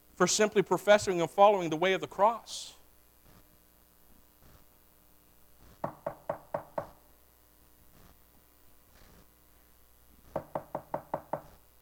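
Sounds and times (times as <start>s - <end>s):
speech: 0.2s - 2.8s
firm knocking on a door: 5.8s - 7.0s, 10.4s - 11.6s.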